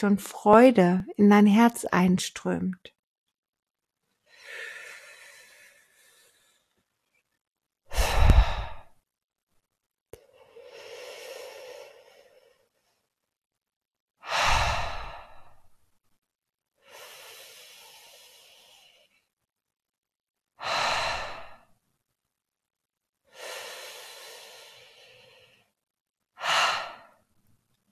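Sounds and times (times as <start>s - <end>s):
speech: 0.0s - 3.0s
slow deep breathing in and out during a meditation exercise: 4.2s - 7.2s, 7.9s - 9.0s, 10.2s - 13.2s, 14.2s - 15.9s, 16.8s - 19.5s, 20.6s - 21.8s, 23.2s - 25.8s, 26.4s - 27.4s.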